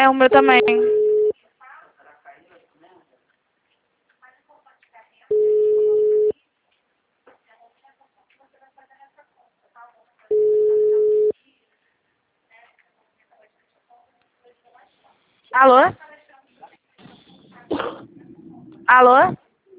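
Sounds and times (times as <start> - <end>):
speech: 0.0 - 1.0, 15.6 - 16.0, 18.9 - 19.4
telephone busy signal beeps after a dropped call: 0.5 - 1.3, 5.3 - 6.3, 10.3 - 11.3.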